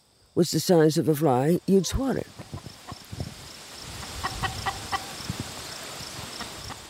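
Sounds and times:
steady outdoor hiss: 0.0s - 6.8s
speech: 0.4s - 2.6s
chickens clucking: 1.7s - 3.3s, 3.9s - 5.4s, 6.2s - 6.8s.

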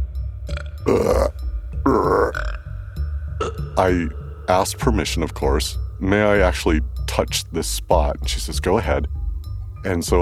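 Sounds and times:
woman burping: 0.5s - 2.7s, 3.4s - 3.6s
speech: 0.8s - 2.5s, 3.8s - 9.2s, 9.8s - 10.1s.

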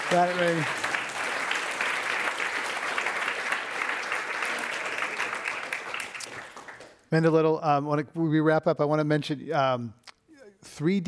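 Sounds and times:
audience applause: 0.0s - 7.0s
speech: 0.1s - 0.9s, 7.1s - 10.0s, 10.7s - 11.0s.

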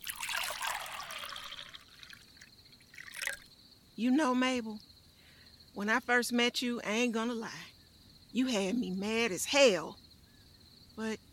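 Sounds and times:
wine pouring into a glass: 0.0s - 3.5s
speech: 4.0s - 4.9s, 5.8s - 7.7s, 8.3s - 10.0s, 11.0s - 11.2s.

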